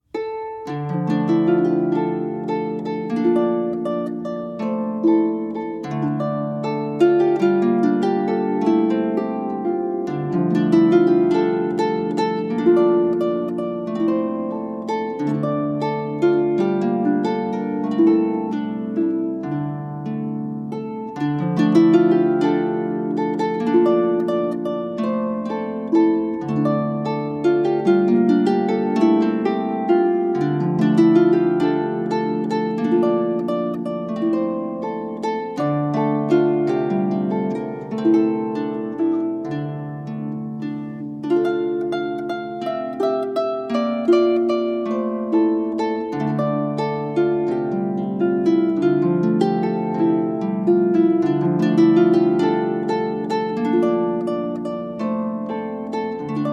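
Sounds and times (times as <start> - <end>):
harp playing a Welsh tune: 0.0 - 56.5.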